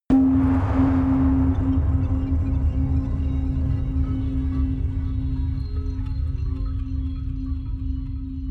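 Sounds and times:
explosion impact hits: 0.1s - 5.8s
long atmospheric artifacts: 0.1s - 8.4s.

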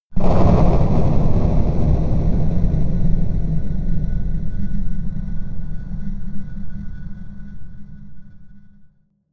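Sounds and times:
explosion impact hits: 0.1s - 6.7s
crushed boom: 0.1s - 7.7s.

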